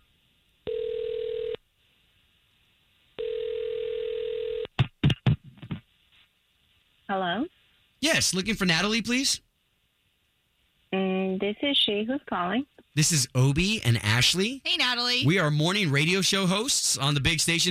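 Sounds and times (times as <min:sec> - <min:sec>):
long steady telephone ringing tones: 0:00.7 - 0:01.6, 0:03.2 - 0:04.7
speech: 0:07.1 - 0:07.5, 0:08.1 - 0:09.4, 0:11.6 - 0:17.6.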